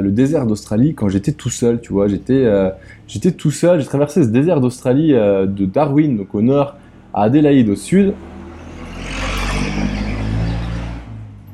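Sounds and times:
speech: 0.0 - 8.4
car driving past with engine rumble and tyre roar: 6.8 - 11.5.

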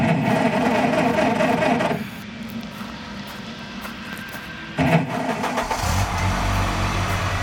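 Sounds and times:
car engine cranking, idling and revving: 0.0 - 2.1, 4.2 - 7.4.

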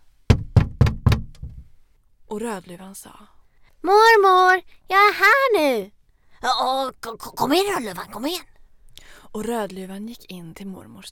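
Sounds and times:
firm knocks on a wooden door: 0.3 - 1.7
speech: 2.3 - 8.5, 9.3 - 11.0.

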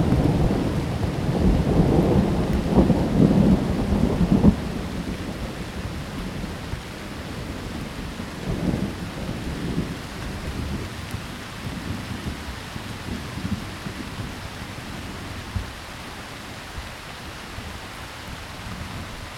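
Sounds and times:
deep rolling thunder: 0.0 - 15.8
steady hiss of rain: 0.0 - 19.3.

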